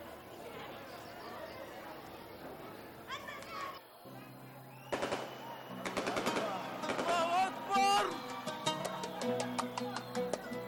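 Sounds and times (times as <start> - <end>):
distant crowd shouting and chanting takbir after prayers: 0.0 - 10.6
firecrackers bursting over a school: 4.8 - 7.5.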